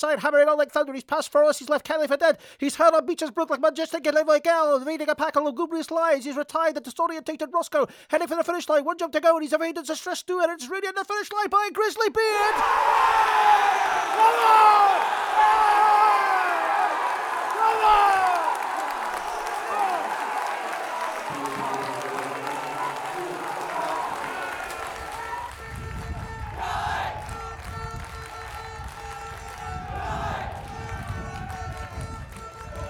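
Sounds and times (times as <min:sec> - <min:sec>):
speech: 0:00.0 - 0:16.3
football fans cheering and shouting as a crowd: 0:12.4 - 0:32.8.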